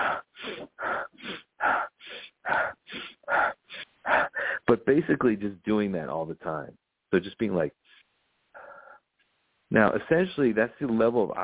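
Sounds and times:
person vocally imitating a forceful breathing exercise with breathy huffs: 0.0 - 4.7
speech: 4.8 - 7.8, 9.8 - 11.4.

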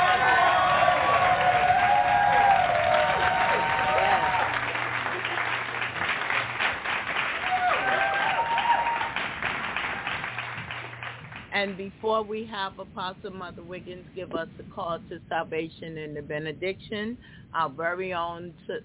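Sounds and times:
scattered cheers: 0.0 - 5.3, 7.3 - 9.4
room full of people clapping: 0.0 - 11.6
speech: 11.6 - 18.8.

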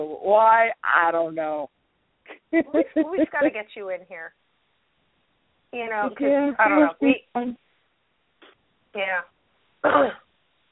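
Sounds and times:
speech: 0.0 - 1.8, 2.5 - 4.4, 5.7 - 7.6, 9.0 - 10.2
laughter: 2.3 - 3.6
person clearing throat with coughs: 9.8 - 10.2.

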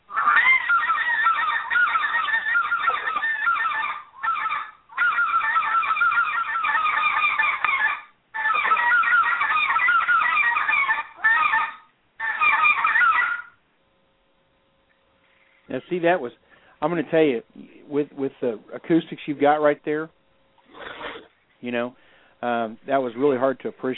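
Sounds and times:
goose call blown old-school style honking: 0.0 - 13.6
speech: 15.9 - 20.2, 21.6 - 23.9.

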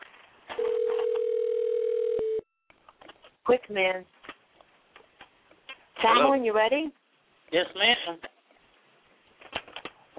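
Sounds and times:
telephone dial tone: 0.6 - 2.4
speech: 3.5 - 4.2, 6.0 - 8.3.

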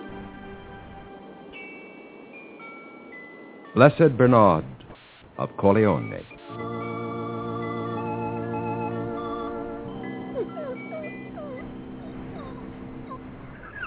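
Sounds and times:
sustained organ-like music: 0.0 - 1.9, 5.4 - 13.8
speech: 3.7 - 4.8, 5.4 - 6.7
sick dog whimpering: 10.0 - 13.8.

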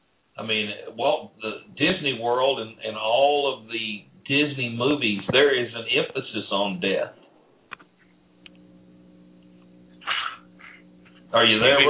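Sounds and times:
steady low electrical hum: 0.0 - 11.8
speech: 0.4 - 7.2, 11.3 - 11.8
person sneezing: 10.0 - 10.8.

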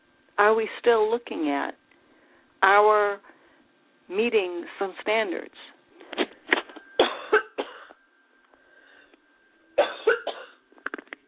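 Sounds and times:
speech: 0.4 - 1.8, 2.6 - 3.3, 4.1 - 6.2
faint breathing: 2.0 - 2.6, 3.2 - 3.8, 8.5 - 9.2
person coughing: 6.2 - 8.0, 9.8 - 10.6.

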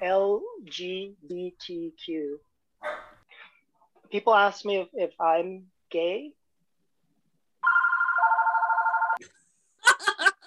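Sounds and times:
speech: 0.0 - 3.0, 4.1 - 6.4
telephone ringing with an electronic trill: 7.6 - 9.2
chuckling laughter: 9.8 - 10.4.

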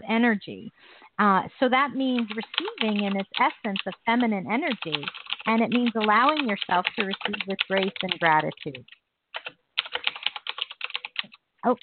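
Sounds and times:
speech: 0.1 - 9.0, 11.6 - 11.8
typing on a computer keyboard: 2.2 - 4.0, 4.7 - 11.4.

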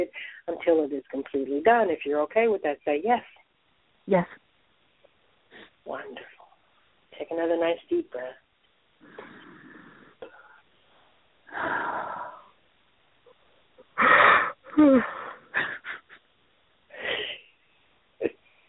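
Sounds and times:
speech: 0.0 - 3.4, 4.0 - 4.4, 5.5 - 6.4, 7.2 - 8.4, 11.5 - 12.4, 14.8 - 15.8
person sighing with short gasps: 11.5 - 12.5, 14.0 - 15.5
person yawning: 14.0 - 15.4.

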